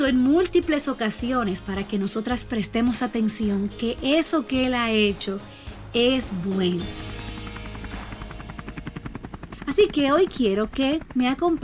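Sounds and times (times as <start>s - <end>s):
speech: 0.1s - 7.2s, 9.7s - 11.6s
helicopter rotor thumping: 0.1s - 11.6s
helicopter engine roar: 3.3s - 11.6s.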